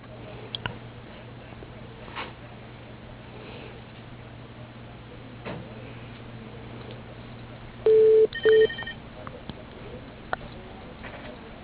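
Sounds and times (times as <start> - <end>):
telephone dialing tones while placing a call to voicemail: 7.9 - 8.9.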